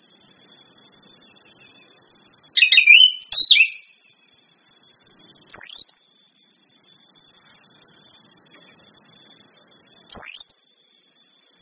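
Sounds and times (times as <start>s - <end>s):
orange-headed thrush chirping calls: 2.6s - 4.0s.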